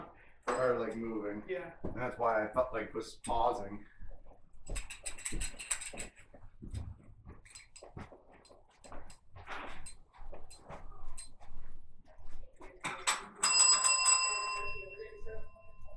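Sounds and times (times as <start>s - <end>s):
speech: 0.5s - 4.0s, 5.3s - 6.8s
doorbell ringing: 13.3s - 15.9s.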